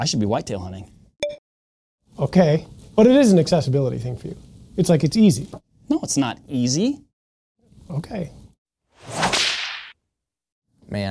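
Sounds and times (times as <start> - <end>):
speech: 0.0 - 1.0, 2.2 - 7.0, 7.9 - 8.4, 10.9 - 11.1
whip crack sound effect with rising airy swish: 9.0 - 10.0.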